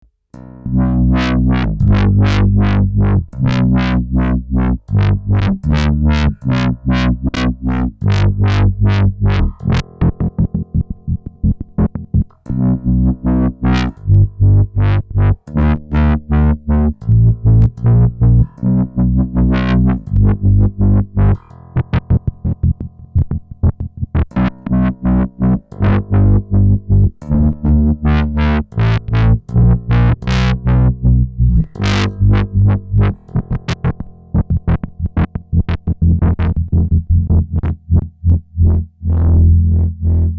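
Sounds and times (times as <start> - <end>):
distorted bass: 0.0 - 40.3.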